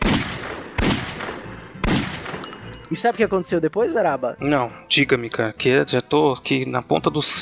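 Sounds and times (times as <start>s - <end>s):
gunshots in a large café: 0.0s - 2.5s
speech: 2.9s - 7.4s.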